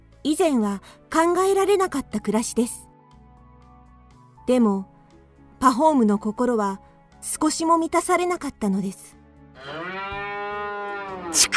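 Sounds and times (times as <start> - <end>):
speech: 0.2 - 2.8, 4.5 - 4.9, 5.6 - 10.0, 11.4 - 11.5
cow mooing: 9.6 - 11.4.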